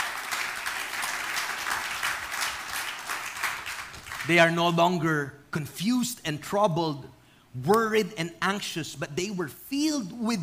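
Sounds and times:
applause from a church congregation: 0.0 - 4.6
speech: 4.2 - 10.4.

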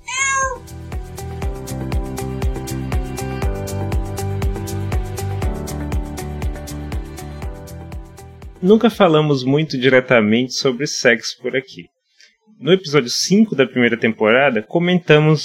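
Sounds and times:
person imitating a cat's meow: 0.0 - 0.8
rhythmic music with a steady beat: 0.6 - 9.2
speech: 8.6 - 12.0, 12.6 - 15.4.

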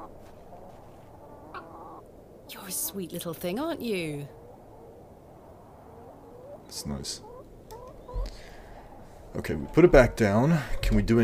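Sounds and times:
hens and roosters clucking: 0.0 - 2.1, 5.8 - 11.2
steady hiss: 0.0 - 11.2
speech: 2.6 - 4.4, 6.8 - 7.3, 9.4 - 11.2.

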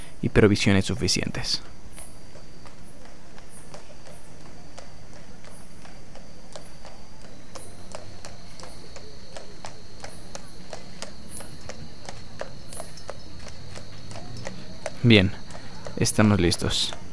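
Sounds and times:
constant hiss: 0.0 - 4.3, 5.0 - 17.1
speech: 0.2 - 1.8, 15.1 - 15.4, 16.0 - 17.0
horse hooves clip-clopping: 1.6 - 17.1.

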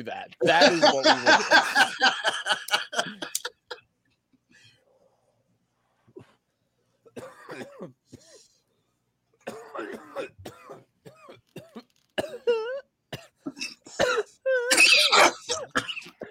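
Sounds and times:
speech: 0.0 - 3.2
laughter: 0.4 - 3.8
harsh hacking coughs after smoking weed: 7.1 - 8.6, 9.4 - 16.2.

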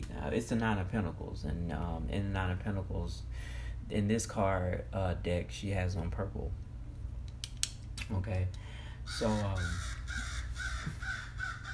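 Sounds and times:
speech: 0.3 - 6.7, 8.1 - 10.2
crow cawing: 9.1 - 11.7.

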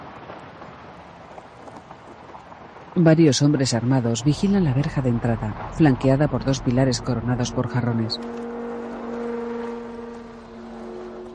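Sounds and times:
speech: 3.0 - 8.5
car idling at the gate of a guarded mansion: 4.3 - 11.3.

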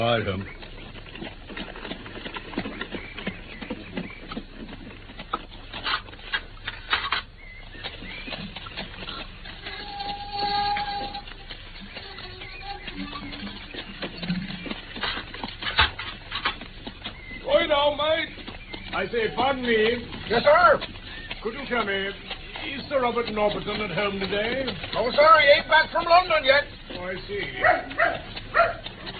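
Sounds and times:
speech: 0.0 - 0.7, 19.1 - 28.2
horse hooves clopping of a horse-drawn carriage on a driveway: 0.0 - 29.1.

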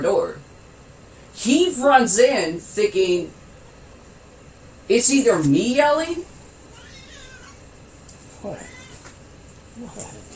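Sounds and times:
faint hum: 0.0 - 10.3
speech: 1.4 - 3.4, 4.9 - 6.3
black cat meowing: 6.7 - 7.6, 8.5 - 9.2.

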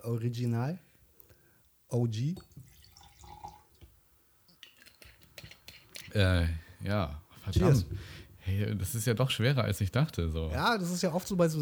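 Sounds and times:
speech: 0.0 - 0.9, 1.9 - 2.7, 6.1 - 11.6
drink pouring from a bottle: 2.4 - 6.2.

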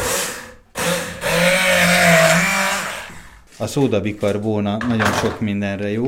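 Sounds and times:
immersion blender blending a thick lemon juice mixture: 0.0 - 3.4
speech: 3.6 - 6.0.

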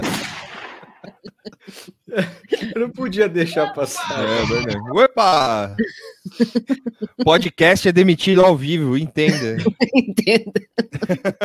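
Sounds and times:
gunshot sound effect with echo: 0.0 - 1.1
people laughing: 0.2 - 11.4
speech: 2.1 - 11.4.

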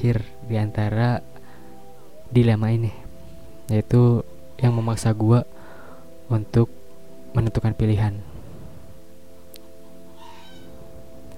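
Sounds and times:
speech: 0.0 - 1.3, 2.3 - 3.0, 3.7 - 5.6, 6.3 - 8.3
chicken calling with nasal tonal cry: 10.1 - 10.8
brief bright chicken squawk: 10.2 - 10.8.

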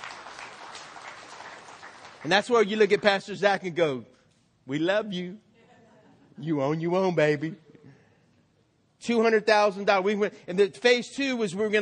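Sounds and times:
audience applause: 0.0 - 2.7
speech: 2.2 - 4.1, 4.7 - 5.4, 6.4 - 7.6, 9.0 - 11.8.

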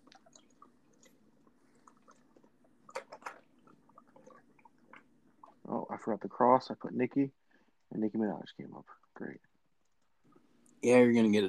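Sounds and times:
gulping swallows: 0.0 - 5.7
person drinking water: 0.0 - 5.7
speech: 6.0 - 7.4, 8.0 - 9.5, 10.8 - 11.4.

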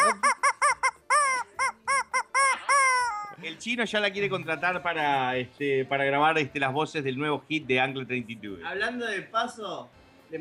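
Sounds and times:
hen clucking loudly with harsh nasal calls: 0.0 - 3.4
speech: 3.6 - 10.3.

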